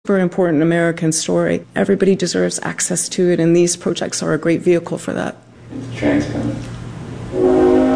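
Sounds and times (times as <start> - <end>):
speech: 0.1 - 6.8
freight train whistle from railroad tracks behind a house: 7.2 - 7.9.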